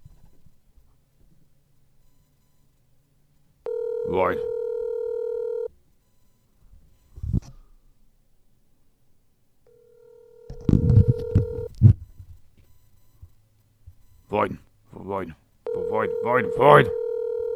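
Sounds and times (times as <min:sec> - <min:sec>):
telephone ringing with long electronic tones: 0:03.7 - 0:05.7, 0:09.7 - 0:11.8, 0:15.7 - 0:17.5
speech: 0:04.2 - 0:04.5, 0:16.2 - 0:17.0
dull thumps: 0:10.5 - 0:11.7
rustling knocks: 0:10.5 - 0:11.7.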